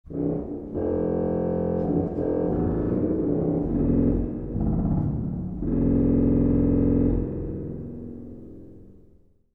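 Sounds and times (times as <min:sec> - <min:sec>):
trombone: 0:00.1 - 0:08.4.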